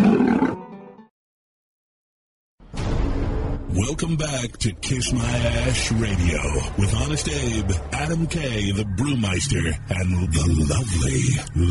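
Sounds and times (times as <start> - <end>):
loud rumbling animal roar: 0.0 - 0.6
speech: 3.8 - 11.7.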